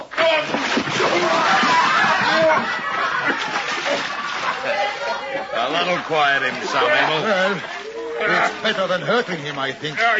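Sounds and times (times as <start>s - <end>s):
heavy splashing as a man is dropped into water: 0.2s - 7.9s
people chuckling: 1.1s - 9.6s
speech: 2.6s - 10.1s.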